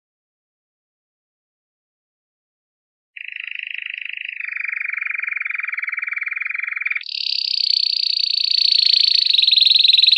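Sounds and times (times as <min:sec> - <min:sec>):
canary singing trill: 0:03.2 - 0:10.1.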